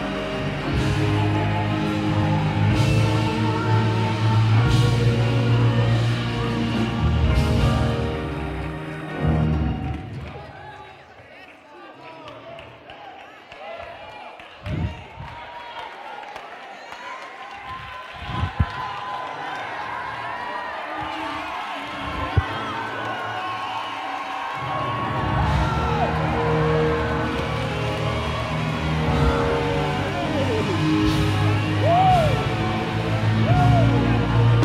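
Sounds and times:
large crowd shouting and cheering: 0.0 - 34.6
scattered clapping: 0.0 - 34.6.

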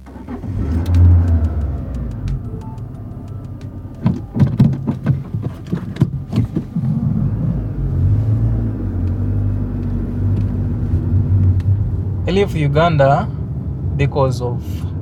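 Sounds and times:
car engine droning inside a moving vehicle: 0.0 - 15.0
knocks and rattles inside a moving car: 0.7 - 6.8.

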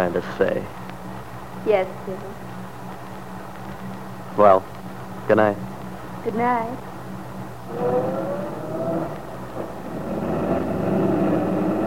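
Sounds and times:
speech: 0.0 - 0.8, 1.6 - 2.5, 4.4 - 6.9, 7.7 - 8.6
truck engine revving and pulling away: 7.6 - 11.8.

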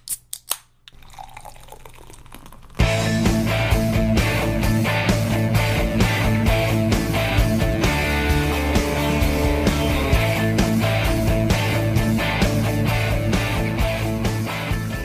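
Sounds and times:
beer fizzing pour from a can: 0.9 - 2.9
loud steady music: 2.8 - 15.0.

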